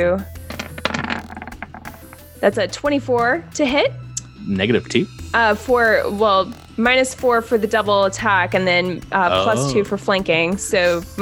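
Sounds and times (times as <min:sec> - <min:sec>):
speech: 0:00.0 - 0:00.3, 0:02.4 - 0:11.1
dice rolling across a hard tabletop: 0:00.4 - 0:02.4.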